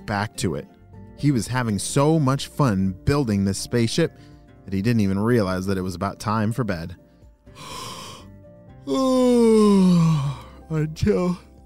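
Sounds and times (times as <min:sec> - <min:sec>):
speech: 0:00.1 - 0:07.0, 0:08.8 - 0:11.5
person yawning: 0:07.6 - 0:10.6.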